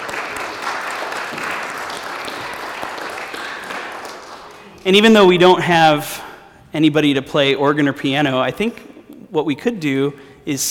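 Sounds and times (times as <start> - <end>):
crowd applauding after a closing prayer and blessing: 0.0 - 4.8
speech: 4.8 - 6.2, 6.8 - 10.6.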